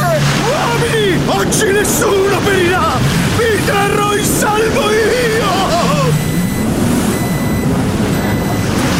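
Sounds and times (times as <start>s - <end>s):
boat engine rumble on a lake: 0.0s - 8.9s
water noise on a lake: 0.0s - 8.9s
speech: 1.4s - 2.8s
high thin electronic low-fuel warning beeps: 3.9s - 8.9s.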